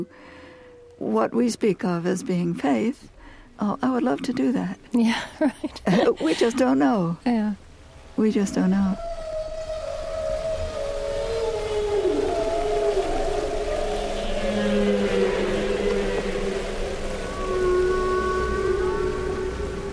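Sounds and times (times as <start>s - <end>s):
speech: 0.0s - 0.4s, 1.0s - 7.6s, 8.2s - 9.1s
steady hiss: 0.0s - 19.9s
humpback whale song: 8.9s - 19.9s.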